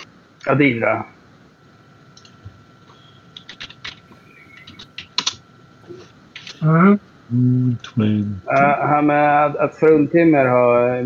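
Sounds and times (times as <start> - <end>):
speech: 0.5 - 1.2, 6.6 - 11.0
typing on a computer keyboard: 3.4 - 4.0, 4.6 - 5.4.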